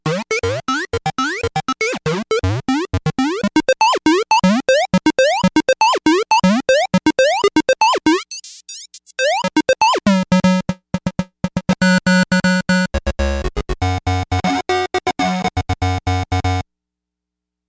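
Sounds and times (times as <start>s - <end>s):
synthesizer sequence from factory patches: 0.1s - 16.6s.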